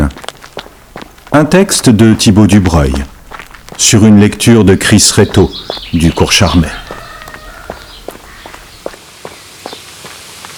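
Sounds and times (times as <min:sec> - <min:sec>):
footsteps of a man running around a pond: 0:00.0 - 0:10.5
light noise: 0:00.0 - 0:10.5
speech: 0:01.4 - 0:03.2, 0:03.8 - 0:06.9.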